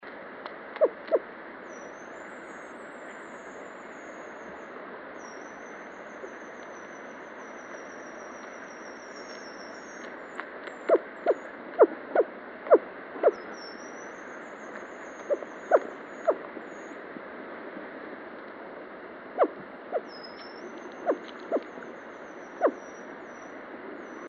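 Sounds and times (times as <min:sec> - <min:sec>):
female Mikado pheasant calling: 0:10.9 - 0:13.5, 0:15.2 - 0:16.4, 0:19.4 - 0:21.7, 0:22.6 - 0:22.8.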